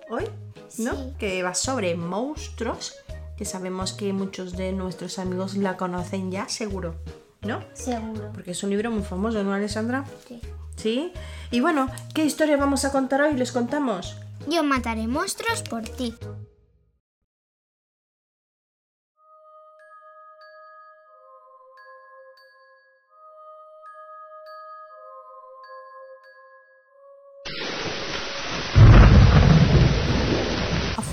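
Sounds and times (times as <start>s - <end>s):
speech: 0.1s - 16.3s
gentle chiming melody: 19.8s - 27.0s
heavy downpour of rain: 27.5s - 31.1s
deep rolling thunder: 28.4s - 31.1s.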